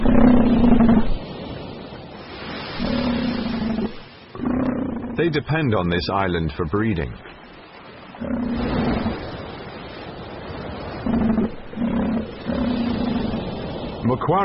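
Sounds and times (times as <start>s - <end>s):
elephant seals bellowing and roaring on a beach on Macquarie Island: 0.0s - 1.2s, 2.7s - 5.2s, 8.2s - 9.3s, 11.0s - 14.0s
man narrating: 5.2s - 7.4s, 14.0s - 14.4s
speech: 5.2s - 7.4s, 14.1s - 14.4s.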